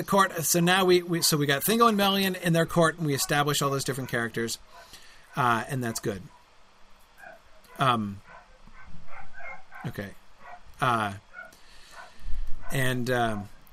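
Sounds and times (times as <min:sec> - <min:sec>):
speech: 0:00.0 - 0:06.4, 0:07.8 - 0:08.2, 0:09.8 - 0:10.2, 0:10.8 - 0:11.2, 0:12.7 - 0:13.7
dogs barking in high-pitched yappy bursts: 0:01.0 - 0:01.5, 0:03.0 - 0:06.5, 0:07.2 - 0:13.6.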